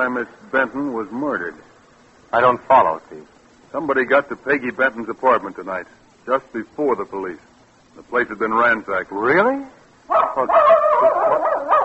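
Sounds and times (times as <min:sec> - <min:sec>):
speech: 0:00.0 - 0:01.7, 0:02.3 - 0:11.8
female dog barking and yelping: 0:10.1 - 0:11.8.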